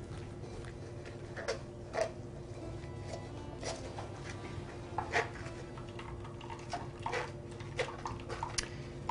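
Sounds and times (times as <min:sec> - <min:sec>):
utensils and containers clinking: 0:00.1 - 0:09.0
liquid mixture poured through a strainer: 0:05.0 - 0:09.0.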